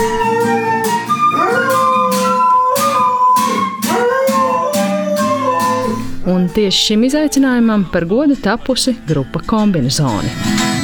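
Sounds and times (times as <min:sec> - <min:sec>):
dog howling along to music: 0:00.0 - 0:07.4
speech: 0:06.5 - 0:10.7
music with a regular beat: 0:10.2 - 0:10.8.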